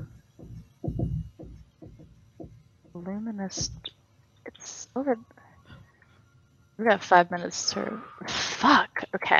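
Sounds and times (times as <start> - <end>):
deep video game heartbeat sound effect: 0.0 - 2.6, 3.4 - 3.9
faint hum: 0.0 - 9.3
speech: 3.0 - 3.9, 4.6 - 5.4, 6.8 - 9.3.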